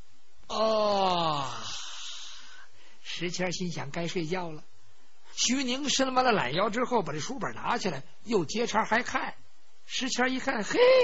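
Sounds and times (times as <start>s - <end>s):
storyteller imitating a long yawn: 0.5s - 2.6s
speech: 3.2s - 4.8s, 5.4s - 11.0s.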